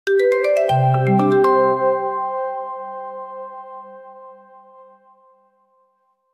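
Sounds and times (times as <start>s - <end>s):
distinctive melodic motif on marimba or vibraphone: 0.1s - 2.4s.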